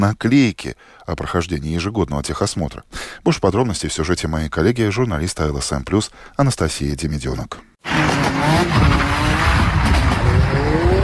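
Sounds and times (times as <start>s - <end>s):
speech: 0.0s - 9.7s
drifting car tires screeching in long wavering squeals: 7.8s - 11.0s
drifting car engines roaring on night village roads: 7.9s - 11.0s.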